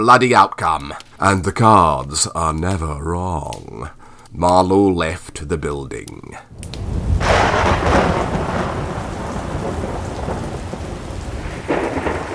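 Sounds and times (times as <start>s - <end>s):
speech: 0.0s - 6.8s
heavy rain pouring: 6.5s - 12.3s
thunder rumbling and cracking: 6.5s - 12.3s.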